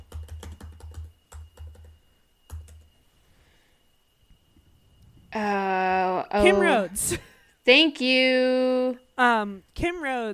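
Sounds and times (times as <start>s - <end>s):
typing on a computer keyboard: 0.0s - 3.0s
faint steady hum: 0.0s - 10.3s
speech: 5.4s - 5.6s, 6.3s - 10.3s.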